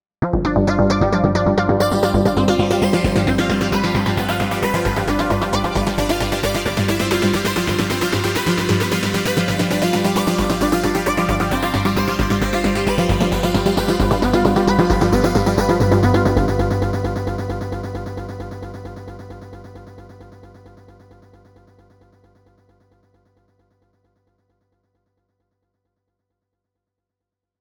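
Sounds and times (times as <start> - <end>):
phased portamento arpeggio: 0.6 - 19.0.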